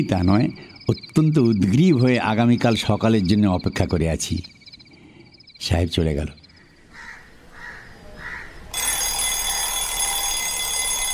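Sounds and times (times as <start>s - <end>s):
speech: 0.0s - 4.6s, 5.6s - 6.4s
alarm clock ringing at dawn: 0.0s - 4.9s, 8.7s - 11.1s.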